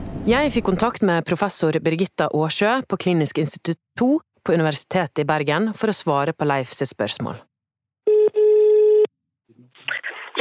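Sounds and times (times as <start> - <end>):
speech: 0.2 - 7.5
telephone ringing tone of an outgoing call: 8.0 - 9.1.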